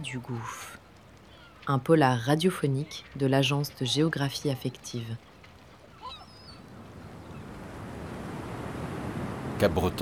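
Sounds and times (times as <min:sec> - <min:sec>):
speech: 0:00.0 - 0:00.8, 0:01.6 - 0:05.3, 0:09.6 - 0:10.0
wind at Capbreton: 0:00.0 - 0:10.0
ocean waves surging and roaring at Capbreton: 0:06.6 - 0:10.0.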